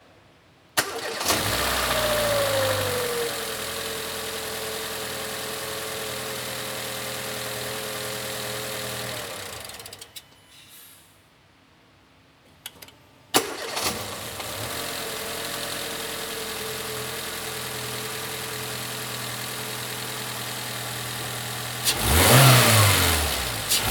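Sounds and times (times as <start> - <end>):
Mercedes A Class petrol engine: 0.8 - 10.3, 13.4 - 23.8.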